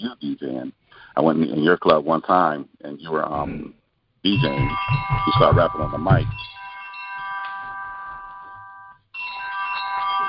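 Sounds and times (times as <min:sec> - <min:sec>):
speech: 0:00.0 - 0:06.6
mobile phone ringtone in bright electronic tones: 0:04.3 - 0:10.2.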